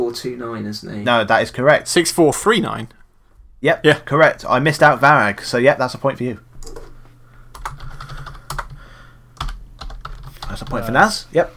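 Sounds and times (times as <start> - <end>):
speech: 0.1 - 3.0, 3.6 - 6.8, 10.6 - 11.5
low steady hum: 1.1 - 11.5
typing on a computer keyboard: 7.5 - 8.8, 9.4 - 10.9.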